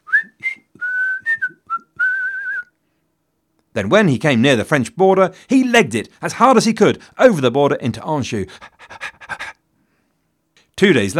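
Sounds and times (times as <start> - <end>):
person whistling a casual meandering tune: 0.0 - 2.8
speech: 3.8 - 9.0, 10.8 - 11.1.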